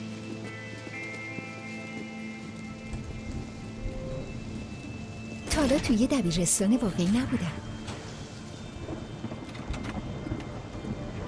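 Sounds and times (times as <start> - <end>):
steady rain pattering on hard surfaces: 0.0 - 11.2
speech: 5.6 - 7.7.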